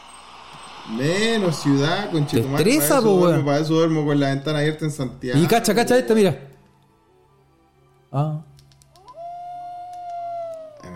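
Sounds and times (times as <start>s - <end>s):
speech: 0.8s - 6.5s, 8.1s - 8.5s
wolf howling: 9.0s - 10.9s.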